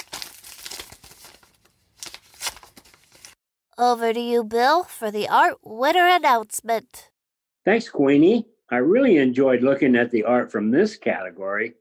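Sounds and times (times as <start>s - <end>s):
golden paper envelope being torn open: 0.0s - 3.4s
speech: 3.8s - 11.7s.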